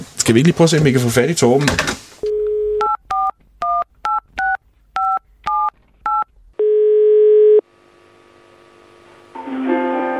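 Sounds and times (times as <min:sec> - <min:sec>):
speech: 0:00.3 - 0:02.0
steady telephone ringing tone: 0:02.2 - 0:04.2, 0:05.0 - 0:07.6.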